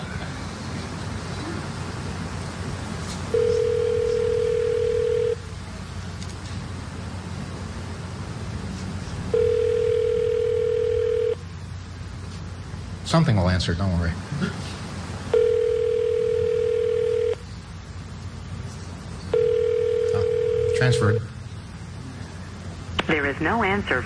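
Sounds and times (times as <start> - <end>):
constant hiss of telephone line noise: 0.0 - 24.0
telephone line tones after a number is dialed: 3.3 - 5.4, 9.3 - 11.4, 15.3 - 17.4, 19.3 - 21.2
speech: 13.1 - 14.8, 20.8 - 21.3, 23.4 - 24.0.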